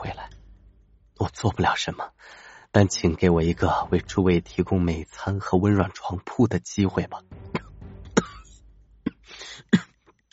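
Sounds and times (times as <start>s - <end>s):
speech: 1.2s - 7.4s
muffled coughing held down in the chest: 7.4s - 10.0s.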